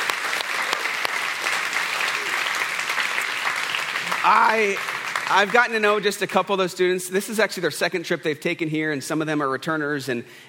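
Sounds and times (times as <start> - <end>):
large group applauding: 0.0 - 6.3
speech: 4.3 - 10.4.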